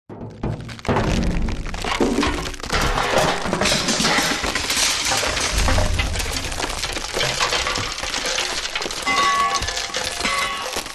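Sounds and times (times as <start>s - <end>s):
wood crash and collapse: 0.4s - 10.9s
metal impacts: 4.0s - 10.9s.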